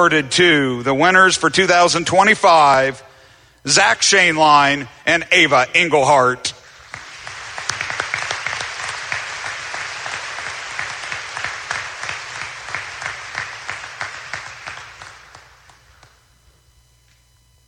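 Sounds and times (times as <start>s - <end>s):
speech: 0.0s - 6.6s
applause from a sizable audience: 6.7s - 16.3s.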